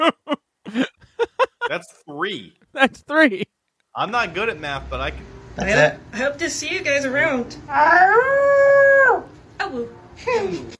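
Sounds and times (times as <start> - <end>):
speech: 1.8 - 10.7
dog howling: 7.8 - 9.3.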